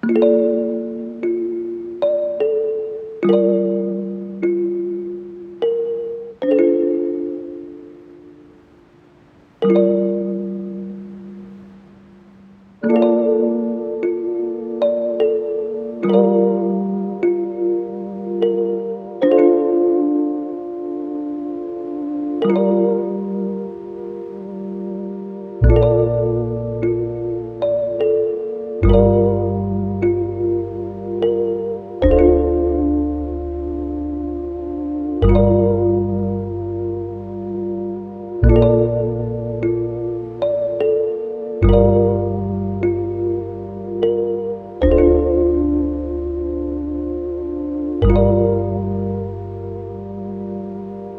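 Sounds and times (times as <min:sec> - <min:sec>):
lofi melody in D minor at 75 BPM: 0:00.0 - 0:51.1.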